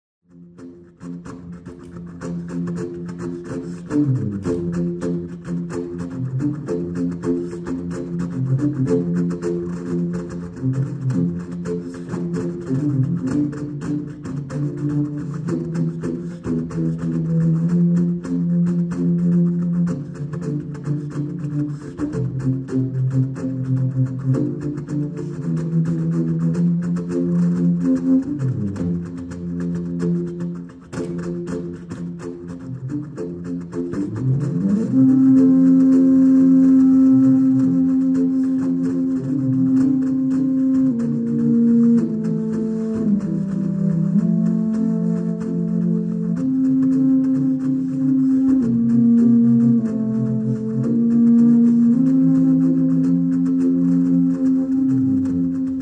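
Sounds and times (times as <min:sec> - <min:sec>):
contrabass flute: 0:00.3 - 0:55.8.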